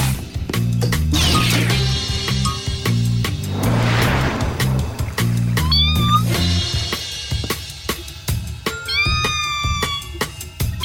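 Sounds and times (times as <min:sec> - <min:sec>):
busy music: 0:00.1 - 0:10.8
kitten in a small boat meowing: 0:05.6 - 0:06.3.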